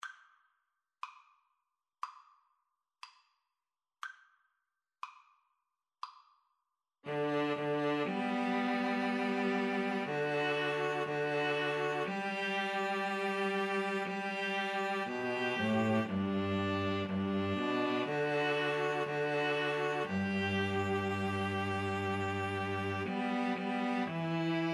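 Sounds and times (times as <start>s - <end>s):
string trio playing a national anthem: 7.1s - 24.7s.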